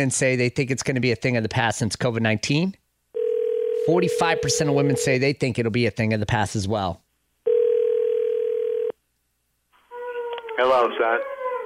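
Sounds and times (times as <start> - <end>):
speech: 0.0 - 2.8, 3.9 - 7.0, 10.6 - 11.3
telephone ringing tone while placing call: 3.2 - 5.1, 7.4 - 9.0.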